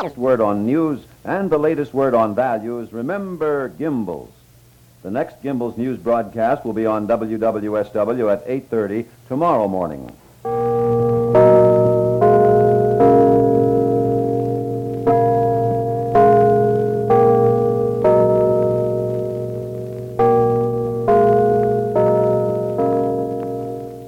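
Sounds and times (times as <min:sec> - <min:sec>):
speech: 0:00.0 - 0:04.4, 0:05.0 - 0:10.6
clock chimes ringing a melodic sequence of bell tones: 0:10.4 - 0:24.0.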